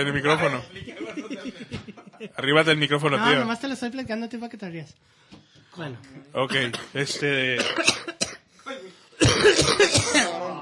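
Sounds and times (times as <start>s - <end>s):
speech: 0.0s - 5.2s, 5.8s - 8.1s, 9.4s - 10.6s
laughter: 0.6s - 2.7s
person coughing as a joke ringtone: 6.5s - 8.5s, 9.2s - 10.5s.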